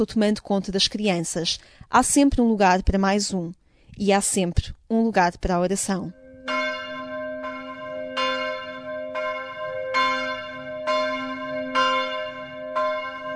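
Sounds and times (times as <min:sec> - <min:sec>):
speech: 0:00.0 - 0:06.2
church bells ringing in a repeating pattern: 0:06.1 - 0:13.3.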